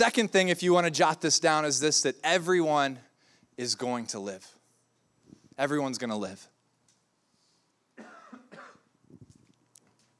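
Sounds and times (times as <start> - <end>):
speech: 0.0 - 4.6, 5.6 - 6.5
man clearing throat: 8.0 - 8.9
man coughing: 8.0 - 8.9.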